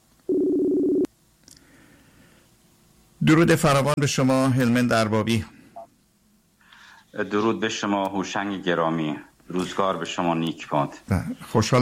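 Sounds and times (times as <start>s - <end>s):
telephone ringback tone: 0.3s - 1.1s
speech: 3.3s - 5.6s, 7.2s - 11.8s.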